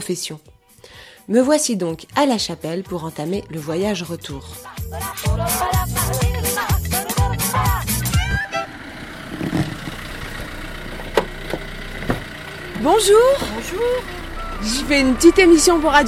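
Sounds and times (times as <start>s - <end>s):
speech: 0.0s - 5.9s, 12.8s - 16.0s
car engine idling: 4.4s - 16.0s
busy tonal sounds: 12.4s - 16.0s.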